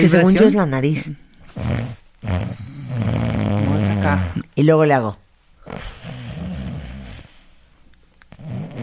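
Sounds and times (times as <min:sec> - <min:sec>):
speech: 0:00.0 - 0:06.2
person imitating snoring: 0:01.6 - 0:04.5, 0:05.6 - 0:07.4, 0:08.3 - 0:08.8.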